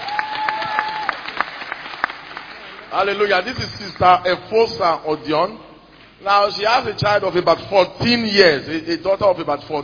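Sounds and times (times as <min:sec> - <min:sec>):
audience clapping rhythmically at a church service: 0:00.0 - 0:03.4
speech: 0:02.9 - 0:09.8.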